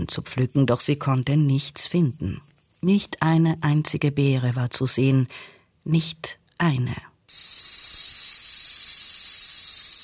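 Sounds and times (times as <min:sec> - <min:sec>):
speech: 0:00.0 - 0:07.7
loud snake hissing: 0:07.3 - 0:10.0.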